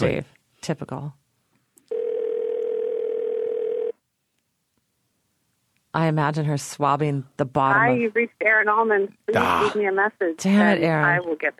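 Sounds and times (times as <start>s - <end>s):
speech: 0.0s - 1.2s, 6.0s - 11.5s
electronic ringback tone of an outgoing phone call: 1.9s - 4.0s.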